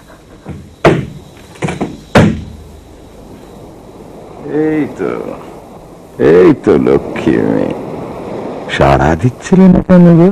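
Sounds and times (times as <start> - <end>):
sharp hard thuds and knocks of a door being opened: 0.4 - 2.6
speech: 4.5 - 5.5, 6.2 - 7.8, 8.7 - 10.3.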